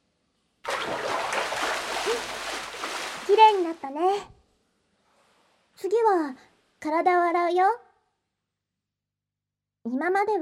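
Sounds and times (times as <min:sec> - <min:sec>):
hot water poured over a head during hair washing: 0:00.7 - 0:03.8
speech: 0:03.3 - 0:04.4, 0:05.8 - 0:07.8, 0:09.8 - 0:10.4.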